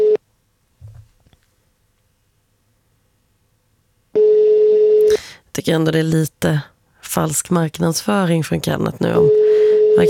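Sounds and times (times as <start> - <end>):
steady electronic phone line ringing tone: 0.0 - 0.2, 4.2 - 5.1, 9.1 - 10.0
faint low thump: 0.8 - 1.2
speech: 5.6 - 10.0.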